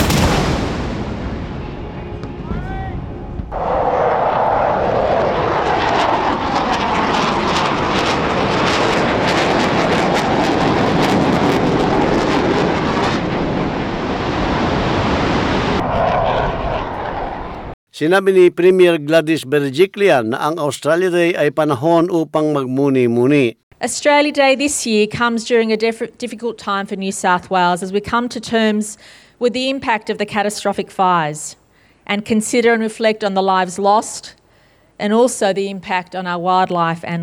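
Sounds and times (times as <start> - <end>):
sharp cracks of gunfire: 0.0 - 1.8
airplanes passing overhead in a flyover: 1.6 - 17.8
speech: 18.0 - 34.4, 35.0 - 37.2.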